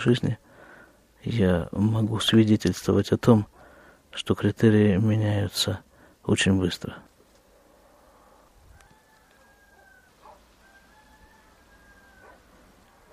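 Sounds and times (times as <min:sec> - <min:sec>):
speech: 0:00.0 - 0:00.4, 0:01.2 - 0:03.5, 0:04.1 - 0:07.1
soft steady hiss: 0:00.0 - 0:13.1
roosters crowing in the distance: 0:07.4 - 0:13.1.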